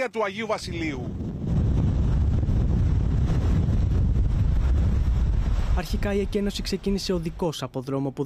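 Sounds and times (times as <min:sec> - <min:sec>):
speech: 0:00.0 - 0:01.2, 0:05.8 - 0:08.2
strong wind roaring amid wildfire smoke on a road leading to a beach: 0:00.4 - 0:07.4.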